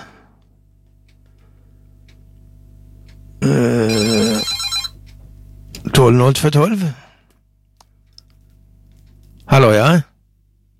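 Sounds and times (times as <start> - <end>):
telephone ringing: 3.8 - 5.0
speech: 6.1 - 7.1, 9.6 - 10.0.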